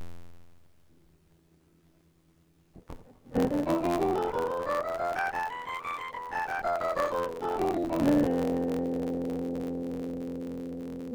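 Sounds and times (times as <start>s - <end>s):
C scale: 3.4s - 11.1s.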